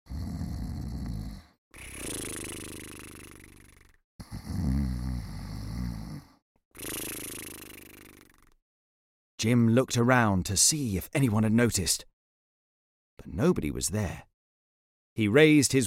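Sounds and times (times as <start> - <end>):
two guards snoring on the ground: 0.1 - 8.4
speech: 9.4 - 12.1, 13.3 - 14.3, 15.2 - 15.8.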